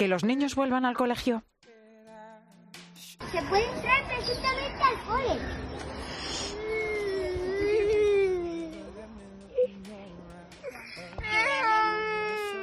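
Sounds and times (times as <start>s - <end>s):
speech: 0.0s - 1.6s, 3.2s - 6.1s
infant crying: 6.4s - 8.9s, 10.8s - 12.6s.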